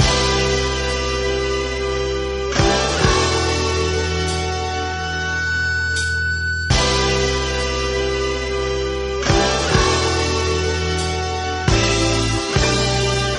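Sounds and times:
guitar feedback loop: 0.0 - 13.3.

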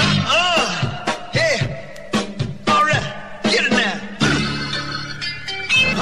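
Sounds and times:
wonky break funky drum loop: 0.0 - 4.9.

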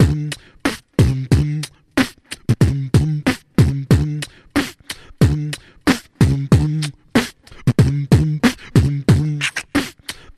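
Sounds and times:
beatbox drum loop: 0.0 - 10.3.

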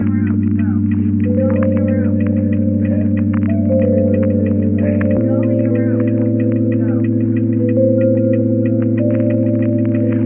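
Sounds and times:
keyboard loop: 0.0 - 10.2.

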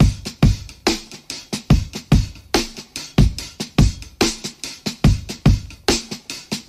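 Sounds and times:
bouncy boom bap drum loops: 0.0 - 6.6.

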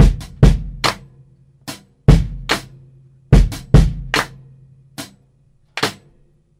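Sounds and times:
boom bap drum loop: 0.0 - 5.2, 5.8 - 6.1
hand claps: 4.1 - 4.4, 5.7 - 6.1.

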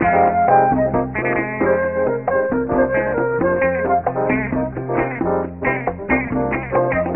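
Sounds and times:
flute: 0.0 - 4.8
guitar: 0.0 - 7.1.

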